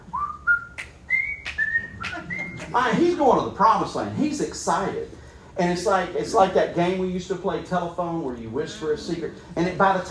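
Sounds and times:
person whistling a cheerful tune: 0:00.1 - 0:02.7
speech: 0:02.7 - 0:10.0.

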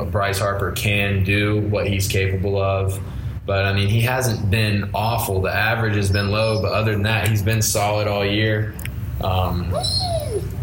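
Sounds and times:
speech: 0:00.0 - 0:10.5
steady low hum: 0:00.0 - 0:10.6
dog whining and whimpering: 0:09.5 - 0:10.6.

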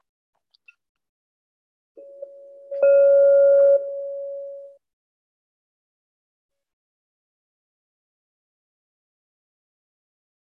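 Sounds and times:
meditation bell ringing with a clear tone: 0:02.0 - 0:04.8.

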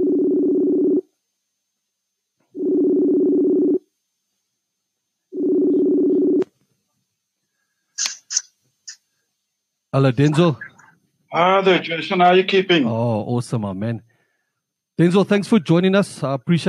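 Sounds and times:
phone call ringback tone: 0:00.0 - 0:01.1, 0:02.6 - 0:03.8, 0:05.3 - 0:06.4
speech: 0:10.0 - 0:10.7, 0:11.3 - 0:14.1, 0:15.0 - 0:16.6.

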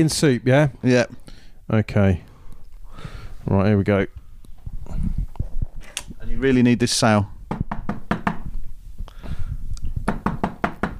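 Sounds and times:
speech: 0:00.0 - 0:02.3, 0:03.0 - 0:04.2, 0:06.3 - 0:07.6
knocking on a wooden front door: 0:07.5 - 0:08.5, 0:10.0 - 0:10.9.

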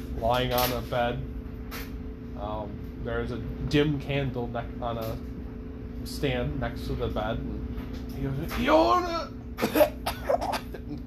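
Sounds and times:
speech: 0:00.2 - 0:01.8, 0:02.4 - 0:05.3, 0:06.0 - 0:07.6, 0:08.2 - 0:10.6
person acting out a harsh raspy coughing fit: 0:09.6 - 0:10.8.

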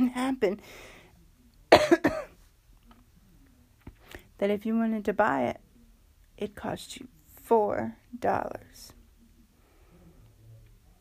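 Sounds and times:
speech: 0:00.0 - 0:00.9, 0:04.4 - 0:05.6, 0:06.4 - 0:09.0
man coughing: 0:01.7 - 0:02.3.

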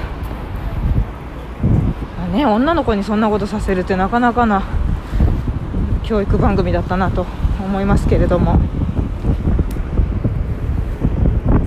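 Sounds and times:
strong wind buffeting the microphone at Asakusa Station: 0:00.0 - 0:11.6
speech: 0:02.3 - 0:04.9, 0:06.1 - 0:08.8.

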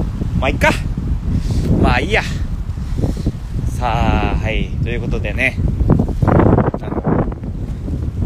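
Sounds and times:
wind buffeting the microphone at the sea: 0:00.0 - 0:08.2
speech: 0:00.4 - 0:00.9, 0:01.8 - 0:02.4, 0:03.8 - 0:05.7.

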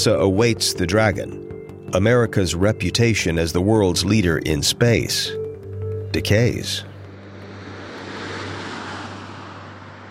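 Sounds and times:
speech: 0:00.0 - 0:05.4, 0:06.1 - 0:06.9
broadband roar of space shuttle landing on runway before dawn: 0:06.8 - 0:10.0
low hum: 0:06.8 - 0:10.0.

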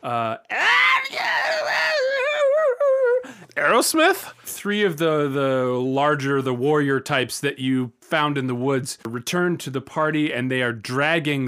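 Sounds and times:
speech: 0:00.0 - 0:00.6, 0:03.8 - 0:11.4
human voice imitating squealing during a fantasy tabletop game: 0:00.0 - 0:03.4.

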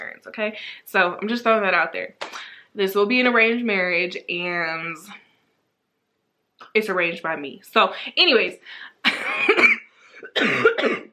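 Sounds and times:
speech: 0:00.2 - 0:05.2, 0:06.8 - 0:11.1
person with a lingering cough coughing: 0:09.1 - 0:11.1.

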